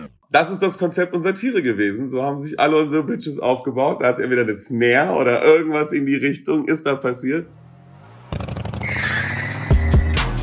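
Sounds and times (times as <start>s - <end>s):
speech: 0.3s - 7.6s
motorcycle engine revving: 7.4s - 10.4s.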